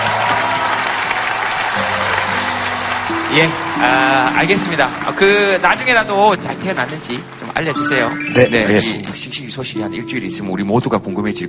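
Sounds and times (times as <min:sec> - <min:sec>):
studio audience applause at a talk show: 0:00.0 - 0:09.0
speech: 0:03.3 - 0:11.4.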